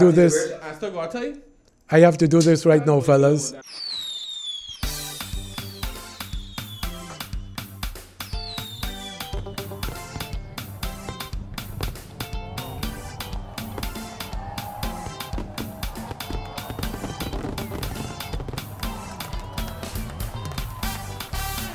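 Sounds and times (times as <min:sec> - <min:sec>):
speech: 0:00.0 - 0:03.9
fireworks crackling and popping: 0:03.6 - 0:07.2, 0:08.3 - 0:21.7.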